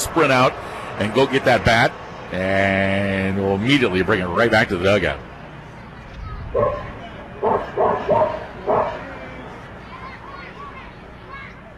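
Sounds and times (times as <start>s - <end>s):
crowd-like murmur at a baseball game: 0.0s - 11.7s
speech: 0.1s - 5.3s, 6.5s - 6.9s
dog barking at a baseball game: 6.6s - 9.0s.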